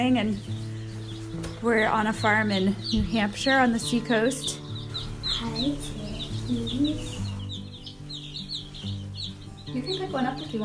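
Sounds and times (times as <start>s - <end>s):
speech: 0.0s - 0.6s, 1.4s - 4.6s, 5.4s - 7.2s, 9.7s - 10.6s
newly arrived baby chicks chirping on a New Hampshire seacoast farm at feeding time: 0.0s - 10.6s.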